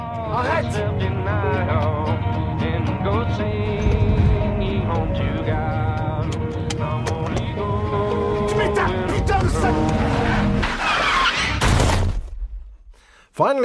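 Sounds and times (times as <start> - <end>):
music: 0.0 - 12.1
car tires skidding: 9.1 - 11.7
loud car crash: 9.4 - 12.6
speech: 13.4 - 13.6.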